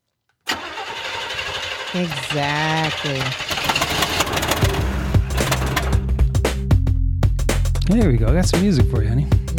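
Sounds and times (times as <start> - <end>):
car engine cranking, starting and running: 0.5 - 6.8
speech: 1.9 - 3.5, 7.9 - 9.4.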